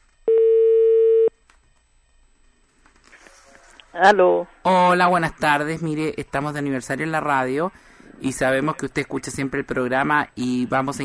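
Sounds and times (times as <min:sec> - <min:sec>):
telephone line tone as a call is placed: 0:00.3 - 0:01.4
speech: 0:04.0 - 0:11.0.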